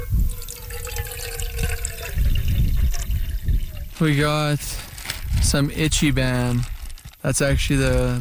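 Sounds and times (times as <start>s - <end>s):
water pouring into a container: 0.1s - 4.1s
speech: 4.0s - 4.9s, 5.4s - 6.7s, 7.2s - 8.1s.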